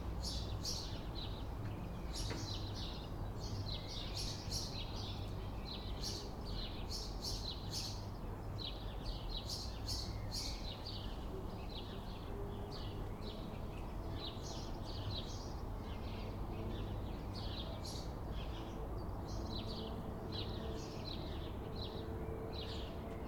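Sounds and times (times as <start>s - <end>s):
sparrows chirping: 0.0s - 23.2s
street traffic rumble in a town: 0.0s - 23.2s.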